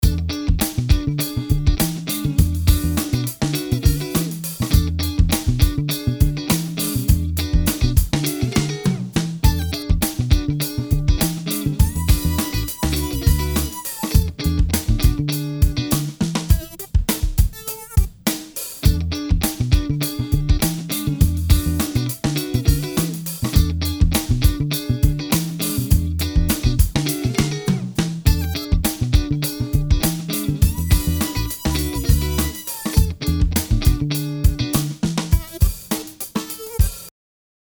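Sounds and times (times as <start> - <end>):
funky guitar: 0.0 - 37.1.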